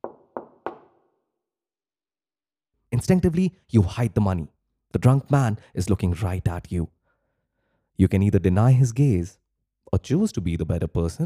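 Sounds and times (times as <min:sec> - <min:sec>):
firm knocks on a wooden door: 0:00.0 - 0:01.0
speech: 0:03.0 - 0:07.0, 0:08.0 - 0:11.2.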